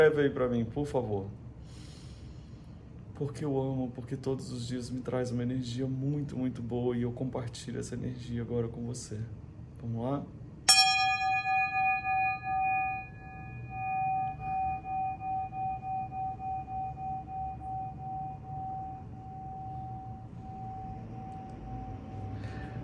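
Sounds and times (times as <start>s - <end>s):
speech: 0.0s - 1.4s, 3.2s - 10.4s
small bell ringing: 10.7s - 22.8s.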